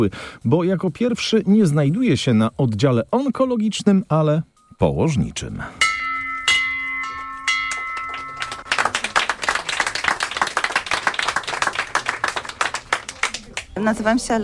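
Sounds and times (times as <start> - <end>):
speech: 0.0 - 5.8, 13.8 - 14.4
hospital maternity ward bell rung by a patient: 5.8 - 8.9
people clapping: 7.6 - 14.4.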